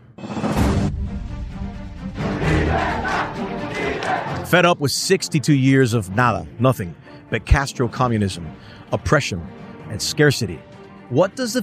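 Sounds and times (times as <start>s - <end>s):
large street protest crowd shouting chants for freedom: 2.3s - 4.5s
speech: 4.5s - 11.6s.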